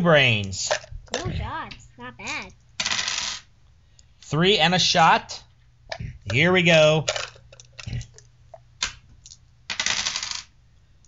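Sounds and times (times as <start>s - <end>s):
speech: 0.0s - 1.6s, 4.3s - 5.4s, 6.3s - 7.2s
several dice rattling onto a hard surface: 2.8s - 3.5s, 7.0s - 8.2s, 9.7s - 10.5s.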